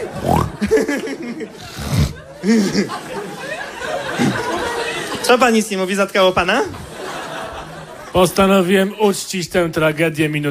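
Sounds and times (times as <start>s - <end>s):
person imitating pig squeals and grunts: 0.0s - 0.6s
laughter: 0.0s - 8.7s
noisy background: 0.0s - 10.4s
speech: 2.4s - 3.0s, 5.3s - 6.8s, 8.1s - 10.4s.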